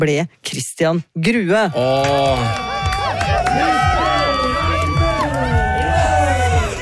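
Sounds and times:
speech: 0:00.0 - 0:04.2
crowd cheering and shouting at a race finish line: 0:01.7 - 0:06.7.

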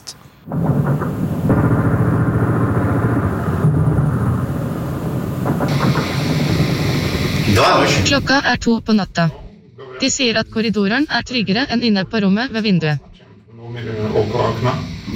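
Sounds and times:
attack drone engine droning at night: 0:00.9 - 0:13.0
speech: 0:07.6 - 0:09.4, 0:10.0 - 0:13.1, 0:14.3 - 0:14.9.

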